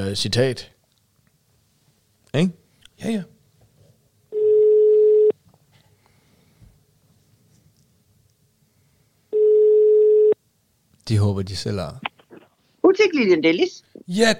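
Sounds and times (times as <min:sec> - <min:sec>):
speech: 0:00.0 - 0:00.8, 0:02.3 - 0:03.3, 0:11.1 - 0:12.1, 0:12.9 - 0:14.3
long electronic ringback tones of an outgoing phone call: 0:04.3 - 0:05.3, 0:09.3 - 0:10.4.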